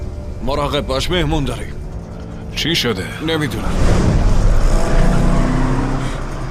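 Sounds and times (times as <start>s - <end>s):
speech: 0.5s - 1.8s, 2.5s - 4.1s
car engine revving and accelerating: 1.7s - 6.4s.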